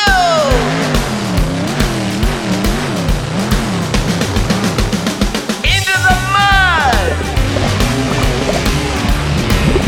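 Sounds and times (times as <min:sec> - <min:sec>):
black monster truck motor revving: 0:00.1 - 0:09.8.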